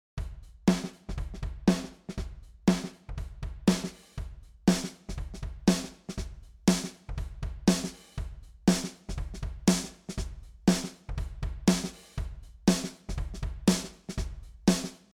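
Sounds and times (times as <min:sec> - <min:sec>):
8 kHz snare drum: 0:00.7 - 0:03.0, 0:03.6 - 0:07.0, 0:07.7 - 0:15.1.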